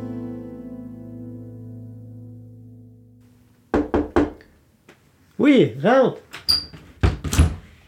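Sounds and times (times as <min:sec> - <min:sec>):
knock: 0:03.7 - 0:04.5
speech: 0:05.5 - 0:06.3
door squeaking: 0:06.3 - 0:07.5.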